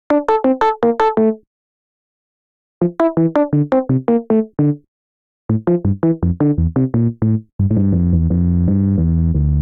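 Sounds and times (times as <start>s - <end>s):
smoky keys melody in D minor: 0.1s - 1.4s, 2.8s - 4.8s, 5.5s - 9.5s.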